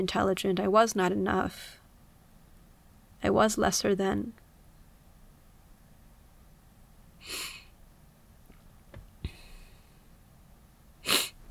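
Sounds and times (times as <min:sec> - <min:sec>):
speech: 0:00.0 - 0:01.8, 0:03.2 - 0:04.4, 0:07.2 - 0:07.5
breathy sniffles: 0:07.2 - 0:07.7, 0:11.0 - 0:11.4.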